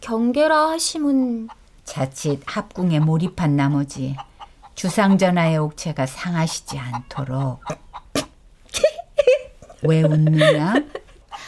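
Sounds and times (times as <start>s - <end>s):
speech: 0.0s - 7.8s, 9.8s - 11.0s
chicken clucking: 1.3s - 5.3s, 6.2s - 8.4s
laughter: 8.8s - 11.2s.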